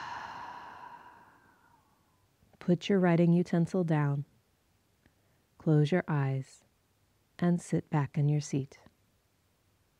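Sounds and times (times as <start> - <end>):
soft breathy exhale during a guided breathing exercise: 0.0 - 1.8
speech: 2.6 - 4.3, 5.6 - 6.6, 7.4 - 8.9.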